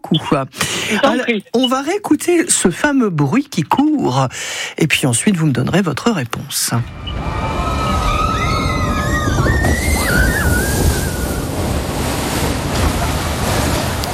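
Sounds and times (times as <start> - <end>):
speech: 0.1 - 7.8
children squealing sliding down a water slide: 6.9 - 11.8
rushing water on a water slide: 9.4 - 14.1.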